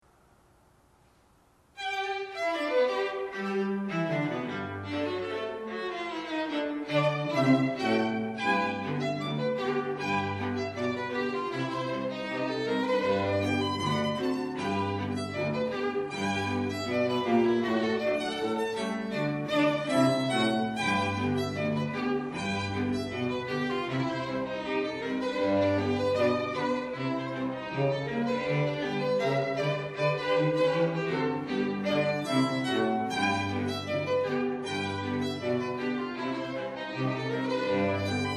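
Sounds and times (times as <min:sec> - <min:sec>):
string quartet playing a rag: 0:01.8 - 0:38.3.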